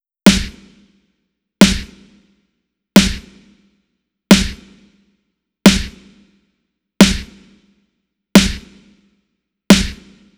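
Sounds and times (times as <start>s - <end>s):
snare drum at 89 BPM: 0.2s - 0.8s, 1.6s - 2.2s, 3.0s - 3.5s, 4.3s - 4.9s, 5.7s - 6.2s, 7.0s - 7.6s, 8.4s - 9.0s, 9.7s - 10.3s.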